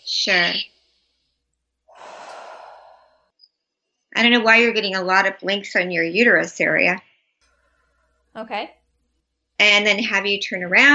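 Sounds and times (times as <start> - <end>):
speech: 0.2 - 0.7, 4.2 - 7.1, 8.4 - 8.8, 9.6 - 10.9
person exhaling deeply during a medical exam: 1.9 - 3.4.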